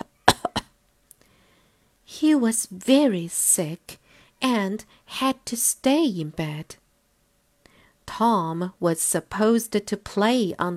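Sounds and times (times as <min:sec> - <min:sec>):
person imitating a cough: 0:00.2 - 0:00.7
speech: 0:02.2 - 0:06.8, 0:08.2 - 0:10.7.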